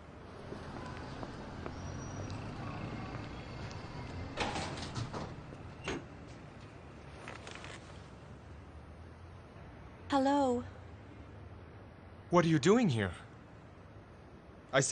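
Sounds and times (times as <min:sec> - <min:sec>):
door sliding and bumping shut: 0:04.2 - 0:06.2
brief knocks and rattles: 0:04.4 - 0:06.4
speech: 0:10.2 - 0:10.7, 0:12.3 - 0:13.2, 0:14.7 - 0:14.9.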